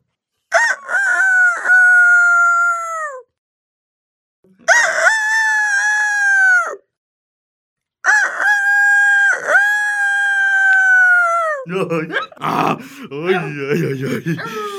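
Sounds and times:
rooster crowing loudly: 0.5 - 3.2, 4.7 - 6.8, 8.0 - 11.6
laughter: 11.6 - 14.7
speech: 11.7 - 14.7.

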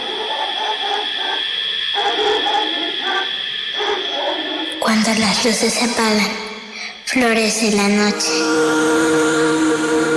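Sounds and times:
distant dog barking: 0.0 - 5.0
steady high-pitched night drone: 0.0 - 10.1
speech: 4.9 - 6.5, 7.1 - 10.1.

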